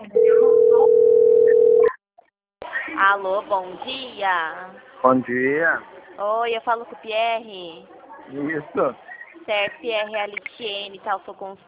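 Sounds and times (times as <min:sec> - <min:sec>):
telephone ringing tone while a call is placed: 0:00.2 - 0:01.9
speech: 0:03.1 - 0:11.6.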